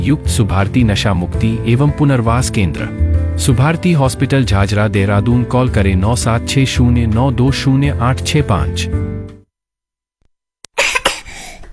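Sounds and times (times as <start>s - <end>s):
speech: 0.0s - 9.1s
person coughing harshly with a raspy rattle: 10.7s - 11.6s.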